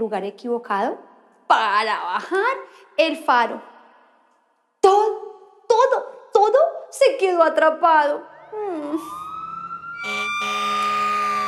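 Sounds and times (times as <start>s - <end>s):
speech: 0.0s - 3.7s, 4.8s - 5.2s, 5.8s - 9.2s, 10.0s - 10.8s
fire truck siren wailing: 8.2s - 11.4s.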